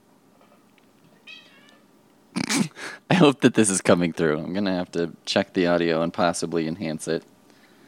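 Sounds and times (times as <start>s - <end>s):
cat high-pitched drawn-out meow: 1.2s - 1.9s
speech: 3.2s - 7.4s.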